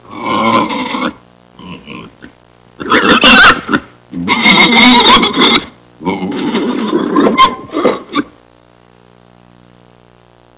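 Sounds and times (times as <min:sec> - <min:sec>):
pig growling: 0:00.1 - 0:08.3.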